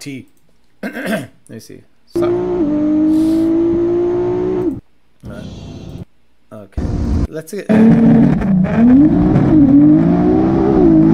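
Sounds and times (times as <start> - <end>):
speech: 0.0 - 3.3, 6.5 - 10.4
1,500 horsepower GTR engine revving: 2.2 - 6.0, 6.8 - 11.1.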